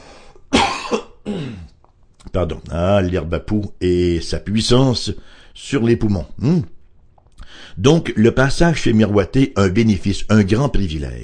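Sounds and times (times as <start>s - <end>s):
person coughing: 0.5s - 1.8s
speech: 0.9s - 1.6s, 2.3s - 6.8s, 7.5s - 11.2s.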